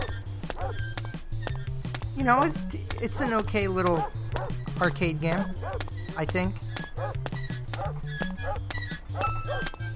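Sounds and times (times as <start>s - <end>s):
dog barking in an arcade game: 0.0s - 0.8s, 3.9s - 4.6s, 5.6s - 5.8s, 7.0s - 8.6s, 9.2s - 9.8s
speech: 2.2s - 9.9s.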